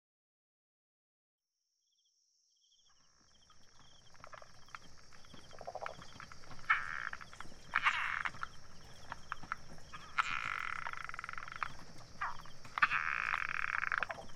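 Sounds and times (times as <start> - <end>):
high insect whine: 2.6 - 14.3
frogs calling in Taiwan: 2.9 - 14.3.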